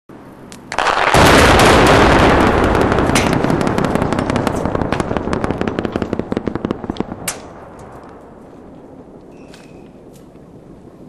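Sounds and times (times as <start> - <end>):
bridge blast: 0.7 - 9.2.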